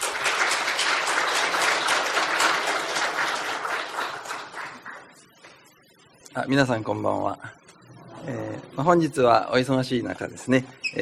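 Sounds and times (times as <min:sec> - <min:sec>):
audience applause welcoming a speaker: 0:00.0 - 0:05.2
speech: 0:06.4 - 0:07.6, 0:08.2 - 0:10.9.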